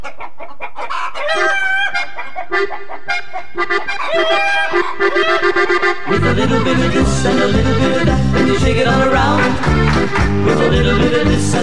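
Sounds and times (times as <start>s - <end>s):
chicken-like clucking sounds in the music: 0.0s - 8.0s
loud bouncy novelty dance tune: 2.0s - 11.6s
speech: 5.1s - 11.6s.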